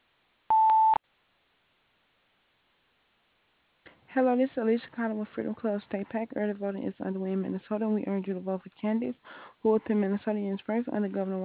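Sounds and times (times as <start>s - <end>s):
mid-pitched voicemail beep: 0.5s - 1.0s
speech: 4.2s - 11.4s.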